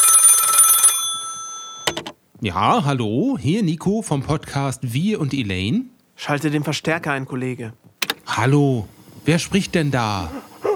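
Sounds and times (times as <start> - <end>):
telephone bell ringing with a metallic trill: 0.0 - 2.0
speech: 2.4 - 10.5.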